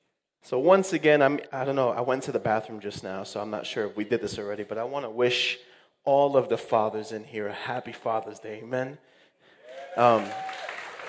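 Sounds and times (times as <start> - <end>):
speech: 0.4 - 9.2, 10.0 - 10.6
audience applause at a church gathering on Father's Day: 9.6 - 11.0
person cheering: 9.6 - 11.0.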